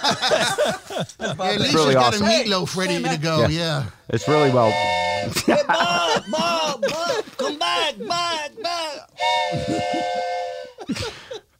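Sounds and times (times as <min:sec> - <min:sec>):
laughter: 0:00.0 - 0:03.6, 0:04.3 - 0:11.4
speech: 0:00.1 - 0:07.0
wooden whistle chord-like hoot: 0:04.2 - 0:05.5, 0:09.2 - 0:11.0.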